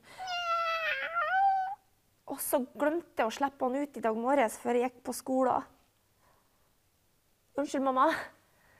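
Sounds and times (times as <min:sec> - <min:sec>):
cat meowing: 0:00.2 - 0:01.8
speech: 0:02.5 - 0:05.8, 0:07.6 - 0:08.4.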